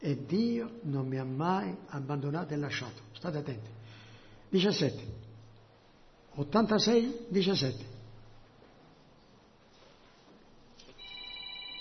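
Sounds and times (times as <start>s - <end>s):
speech: 0.0s - 3.8s, 4.5s - 5.2s, 6.4s - 7.9s
low steady hum: 0.0s - 11.7s
mobile phone electronic ringtone with rapid pulsing tones: 11.0s - 11.7s.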